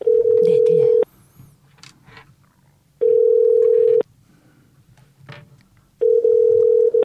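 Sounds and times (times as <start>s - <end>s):
telephone ringback tone of a call connecting: 0.0s - 1.1s, 3.0s - 4.0s, 6.0s - 7.0s.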